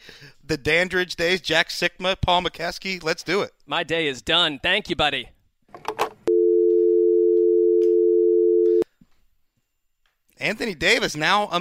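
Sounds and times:
speech: 0.5s - 5.4s, 10.4s - 11.5s
telephone dial tone: 6.3s - 8.8s.

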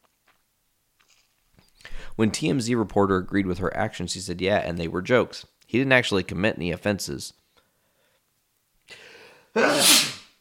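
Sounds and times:
speech: 2.2s - 7.4s, 9.6s - 10.0s
person sneezing: 9.6s - 10.3s.

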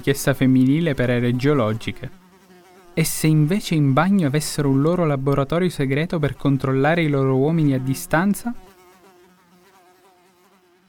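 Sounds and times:
speech: 0.0s - 2.2s, 3.0s - 8.6s
housefly buzzing: 0.4s - 3.6s, 6.2s - 10.8s.

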